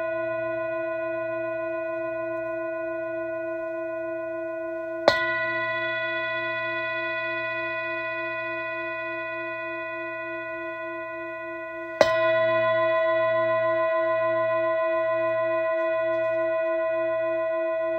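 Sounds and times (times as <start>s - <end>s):
Tibetan singing bowl ringing with a sustained tone: 0.0s - 17.9s.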